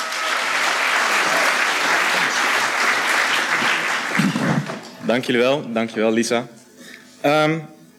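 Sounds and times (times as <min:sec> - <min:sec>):
audience applauding to welcome speakers: 0:00.0 - 0:05.0
speech: 0:05.1 - 0:06.6, 0:07.2 - 0:07.8.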